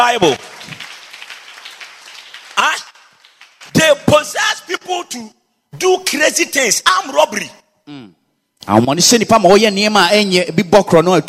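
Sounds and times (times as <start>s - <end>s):
speech: 0.0s - 0.5s, 5.0s - 11.2s
audience clapping: 0.0s - 4.4s.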